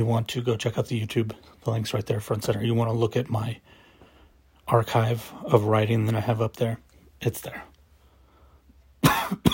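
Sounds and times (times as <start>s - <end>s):
speech: 0.0s - 3.8s, 4.7s - 7.7s
dry raspy cough from a dry throat: 9.0s - 9.5s.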